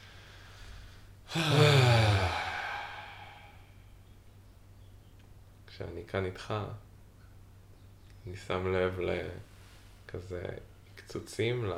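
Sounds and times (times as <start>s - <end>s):
deep breath released as a long voiced sigh: 1.3s - 3.9s
speech: 1.4s - 1.7s, 5.8s - 6.9s, 8.2s - 9.5s, 10.1s - 11.7s.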